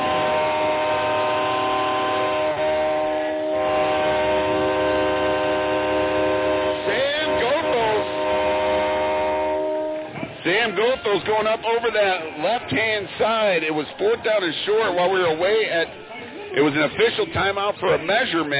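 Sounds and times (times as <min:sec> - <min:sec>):
train horn: 0:00.0 - 0:10.2
speech: 0:10.7 - 0:18.5.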